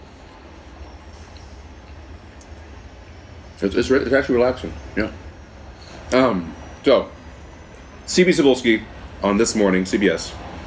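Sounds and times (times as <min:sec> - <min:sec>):
train rolling past on the railroad in Gold California: 0:00.0 - 0:10.6
speech: 0:03.6 - 0:05.2, 0:06.1 - 0:07.2, 0:08.1 - 0:10.5.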